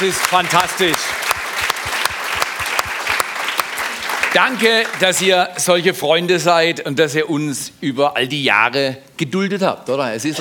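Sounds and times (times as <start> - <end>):
speech: 0.0 - 1.3, 4.4 - 10.3
audience applauding: 0.0 - 5.6.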